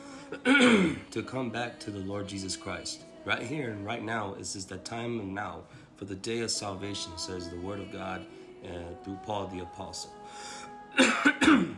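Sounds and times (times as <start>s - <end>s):
person clearing throat: 0.3s - 1.1s, 11.0s - 11.7s
person coughing: 0.3s - 1.1s, 11.0s - 11.7s
speech: 0.3s - 11.7s.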